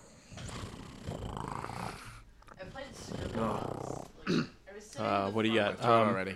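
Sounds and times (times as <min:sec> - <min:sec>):
person imitating a cat purring: 0:00.3 - 0:02.2, 0:03.1 - 0:04.2
speech: 0:04.3 - 0:06.3.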